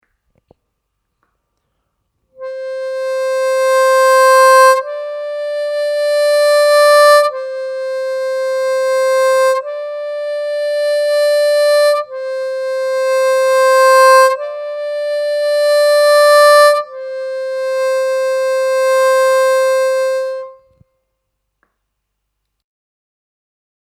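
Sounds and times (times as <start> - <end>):
harmonica playing single notes: 2.4 - 20.8.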